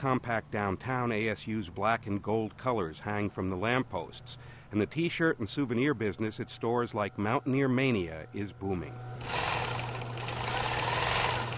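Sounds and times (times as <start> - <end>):
speech: 0.0 - 9.5
shop sewing machine stitching letters onto a sweatshirt: 9.2 - 11.5.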